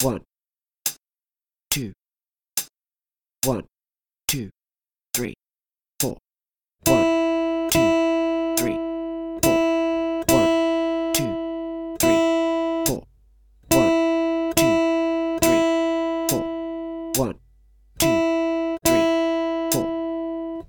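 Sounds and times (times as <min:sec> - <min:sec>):
long guitar notes: 0:06.8 - 0:20.6.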